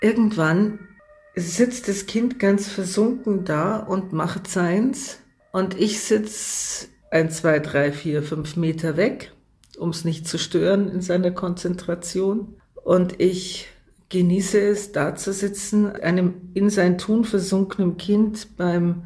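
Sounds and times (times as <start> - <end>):
ambulance siren wailing in the background: 0.0 - 9.2
speech: 0.0 - 19.0.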